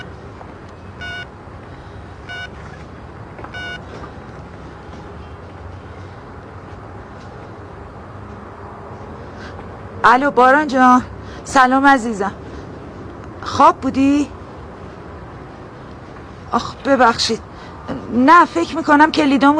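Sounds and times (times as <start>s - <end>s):
steady broadband noise: 0.0s - 19.5s
telephone number being dialed with tone beeps: 1.0s - 1.3s, 2.3s - 2.6s, 3.5s - 3.8s
speech: 10.0s - 12.4s, 13.6s - 14.4s, 16.5s - 19.5s.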